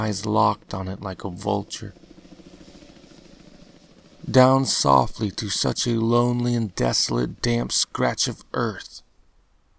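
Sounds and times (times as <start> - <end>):
speech: 0.0 - 2.0, 4.2 - 9.0
helicopter rotor thumping: 0.0 - 7.1.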